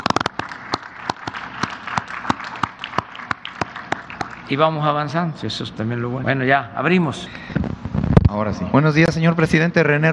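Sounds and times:
group of people applauding: 0.0 - 5.4
speech: 4.5 - 7.4, 8.3 - 10.1.

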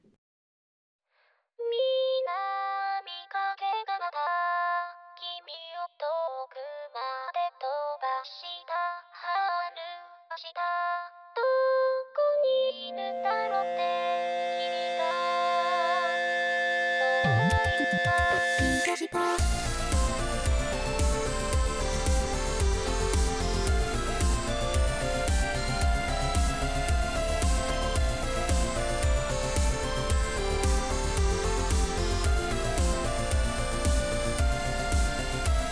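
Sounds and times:
Vocaloid synthesized-voice pop song: 1.7 - 35.7
fuller electronic backing music: 12.9 - 35.7.

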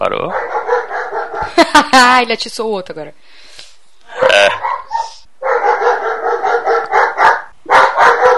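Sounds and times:
speech: 0.0 - 0.5, 2.2 - 3.4
dog barking angrily: 0.2 - 1.6, 4.2 - 8.3
laughter: 1.4 - 2.1.

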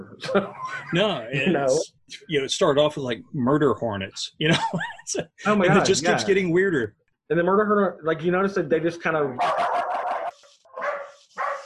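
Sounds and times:
laughter: 0.0 - 1.9, 4.3 - 6.4
speech: 0.2 - 9.6
dog barking: 9.4 - 11.6.

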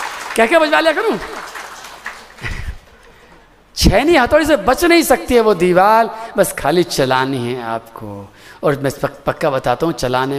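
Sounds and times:
audience clapping: 0.0 - 3.1
speech: 0.4 - 1.6, 3.8 - 10.3.

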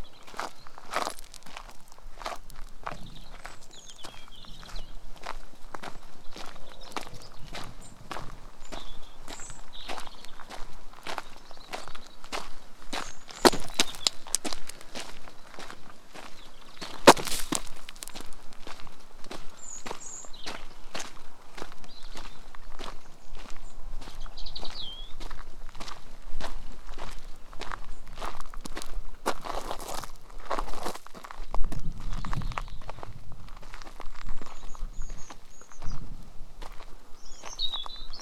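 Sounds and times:
small bird calls chirping faintly: 0.0 - 18.6, 19.3 - 25.2, 34.4 - 36.2, 37.0 - 38.1
footsteps crunching on a fenland farm stroll: 0.0 - 38.1
louder footstep scuffs: 0.3 - 10.1, 12.4 - 24.2, 27.0 - 31.4.

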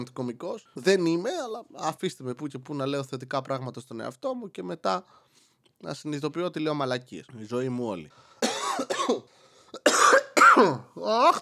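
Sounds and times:
speech: 0.0 - 11.3
man coughing: 8.4 - 11.3.

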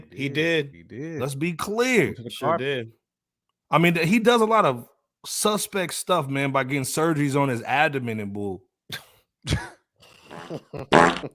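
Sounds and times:
speech: 0.2 - 3.0, 3.7 - 9.7, 10.4 - 11.3
fart sound effect: 10.3 - 11.3.

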